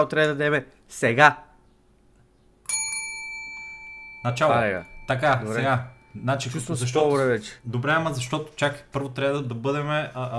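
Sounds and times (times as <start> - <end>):
speech: 0.0 - 1.5, 4.2 - 10.3
small bell struck: 2.7 - 7.6.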